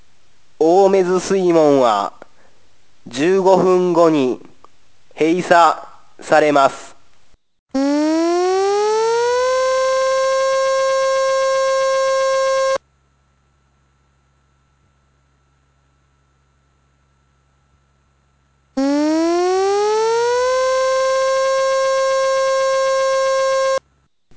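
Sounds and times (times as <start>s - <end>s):
speech: 0.6s - 2.2s, 3.1s - 4.5s, 5.2s - 6.9s
tsunami warning civil defense siren: 7.8s - 12.8s, 18.8s - 23.8s.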